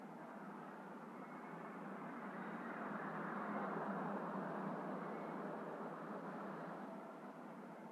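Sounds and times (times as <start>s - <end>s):
light desert wind: 0.0s - 7.9s.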